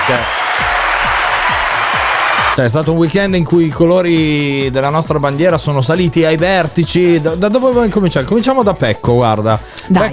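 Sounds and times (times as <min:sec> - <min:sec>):
loud dense clapping from a crowd: 0:00.0 - 0:03.2
steady thumping beat: 0:00.0 - 0:10.1
speech: 0:00.1 - 0:00.4, 0:02.6 - 0:10.1.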